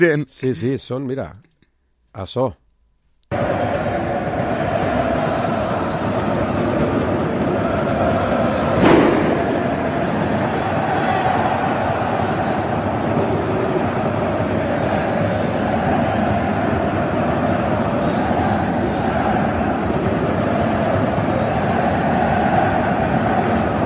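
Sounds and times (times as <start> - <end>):
speech: 0.0 - 1.5, 2.2 - 2.6
dense steady roar in a football stadium: 3.3 - 23.8
firecracker blast in a football stadium: 8.7 - 11.2.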